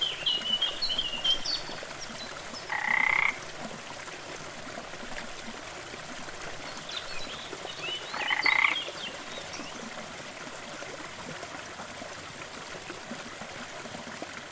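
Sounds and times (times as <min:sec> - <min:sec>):
soft trickling background: 0:00.0 - 0:14.5
frog giving harsh buzzy croaks with a rising tonal edge: 0:02.7 - 0:03.4, 0:08.1 - 0:08.8.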